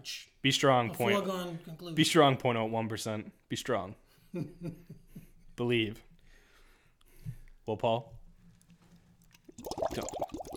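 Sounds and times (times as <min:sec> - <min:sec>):
speech: 0:00.0 - 0:05.0, 0:05.6 - 0:06.1, 0:07.2 - 0:08.2, 0:10.0 - 0:10.2
gurgling and plopping liquid: 0:09.2 - 0:10.5
bubbles blown into a drink: 0:09.4 - 0:10.5.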